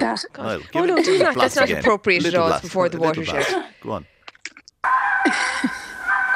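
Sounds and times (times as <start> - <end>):
speech: 0.0 - 5.9
fox screaming in breeding season: 4.8 - 6.3.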